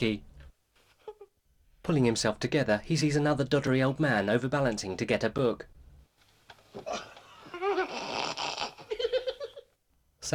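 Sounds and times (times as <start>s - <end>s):
speech: 0.0s - 0.3s, 1.8s - 5.8s, 6.7s - 7.1s
man snoring with nasal rasp: 7.9s - 8.9s.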